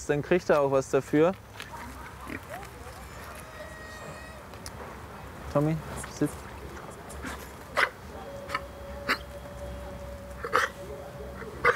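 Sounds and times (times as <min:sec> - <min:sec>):
low steady noise: 0:00.0 - 0:11.7
speech: 0:00.1 - 0:02.5, 0:05.5 - 0:06.5
dog gagging and hiccuping after swallowing too hastily: 0:07.1 - 0:09.3, 0:10.4 - 0:10.8.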